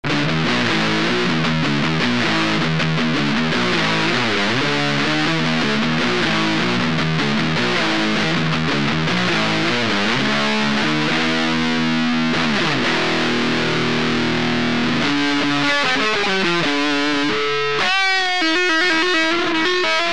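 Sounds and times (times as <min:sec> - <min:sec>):
Triaxis overdriven guitar rhythm: 0:00.0 - 0:20.1.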